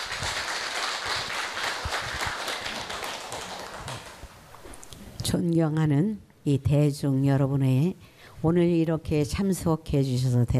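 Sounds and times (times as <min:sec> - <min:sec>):
audience applause welcoming a Buddhist patriarch: 0:00.0 - 0:04.3
speech: 0:05.3 - 0:10.5.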